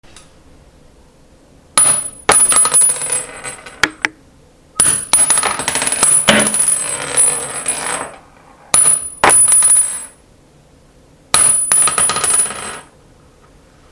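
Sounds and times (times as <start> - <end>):
high caliber shell casings dropping: 1.8 - 3.8, 4.8 - 8.2, 8.8 - 10.2, 11.4 - 12.9.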